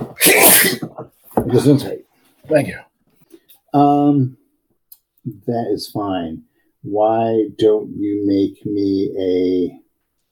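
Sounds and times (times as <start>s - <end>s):
person sneezing loudly: 0.0s - 1.0s
speech: 0.2s - 0.8s, 1.5s - 2.9s, 3.7s - 4.4s, 5.2s - 9.8s.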